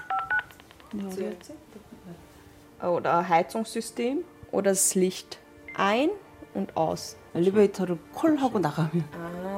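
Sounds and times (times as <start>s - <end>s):
smartphone keypad dial-tone beeps: 0.0s - 0.6s
speech: 0.9s - 9.4s.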